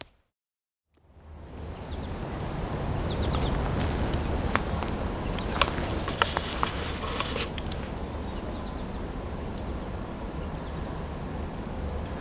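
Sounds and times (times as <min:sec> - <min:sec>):
steady outdoor hiss: 0:01.4 - 0:12.1
American goldfinches calling: 0:01.7 - 0:10.2.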